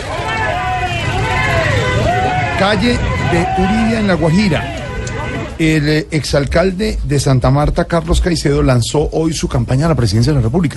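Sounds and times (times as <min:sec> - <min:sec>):
siren: 0:00.0 - 0:05.6
car horns: 0:00.0 - 0:05.8
crowd chatter on a street: 0:00.0 - 0:06.8
street traffic rumble: 0:00.0 - 0:10.7
speech: 0:02.6 - 0:04.8, 0:05.6 - 0:10.7.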